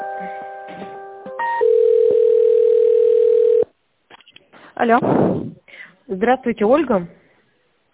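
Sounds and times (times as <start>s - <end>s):
telephone tones while a call is connected: 1.4s - 3.7s
speech: 4.9s - 5.3s, 6.2s - 7.2s.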